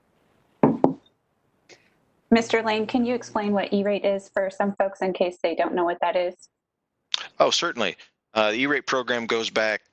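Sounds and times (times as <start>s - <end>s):
knocking on a wooden surface: 0.6s - 1.1s
speech: 2.3s - 6.6s, 7.4s - 9.9s.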